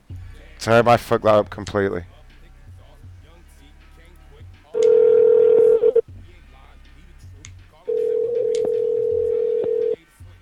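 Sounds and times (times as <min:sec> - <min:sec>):
speech: 0:00.6 - 0:02.2
telephone ringback tone on an outgoing call: 0:04.8 - 0:06.0, 0:07.9 - 0:10.0.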